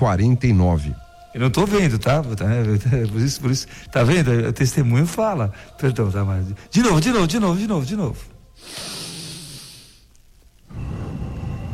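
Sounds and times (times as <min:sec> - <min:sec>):
speech: 0:00.0 - 0:09.0
heavy breaths blown into a microphone: 0:03.6 - 0:04.0, 0:05.5 - 0:05.8, 0:08.6 - 0:10.1.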